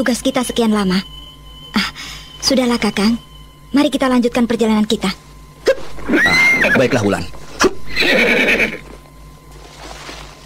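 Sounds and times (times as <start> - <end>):
speech: 0.0 - 8.8
horse neighing while ridden fast: 6.0 - 6.9, 7.9 - 8.9.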